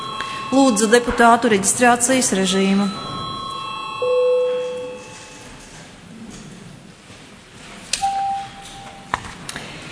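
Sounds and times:
parliamentary chamber bell in the Latvian Saeima ringing electronic tones: 0.0 - 5.8, 8.0 - 9.1
speech: 0.5 - 3.2.

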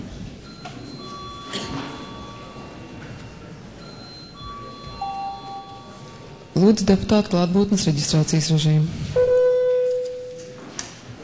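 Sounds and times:
faint murmur of voices during a parliament session: 0.0 - 11.2
steady electronic parliament session bell ringing: 0.4 - 7.6, 9.2 - 10.7
speech: 6.6 - 9.2.

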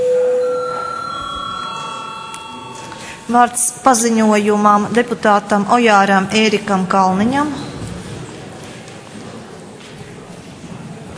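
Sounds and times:
electronic bell ringing in a parliamentary session: 0.0 - 4.9
speech: 3.3 - 7.7.

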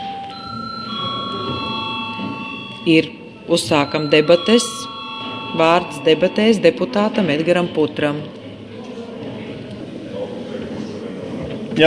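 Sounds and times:
chairman's bell ringing in parliament: 0.0 - 8.3
speech: 2.8 - 5.0, 5.6 - 8.4.

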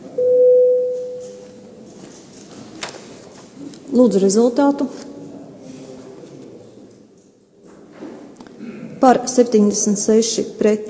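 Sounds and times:
electronic voting signal tone in a parliamentary vote: 0.2 - 1.8
speech: 3.9 - 5.1, 9.0 - 10.8.

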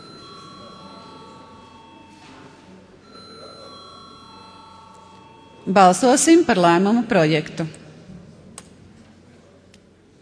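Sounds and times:
parliament electric voting bell ringing: 0.0 - 6.8
soft murmur of a large hall: 0.0 - 10.2
speech: 5.7 - 7.8.

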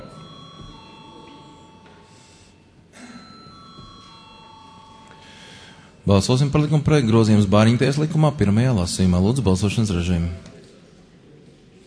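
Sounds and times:
electric bell ringing in a parliament chamber to call a vote: 0.0 - 6.0
speech: 6.1 - 10.5.

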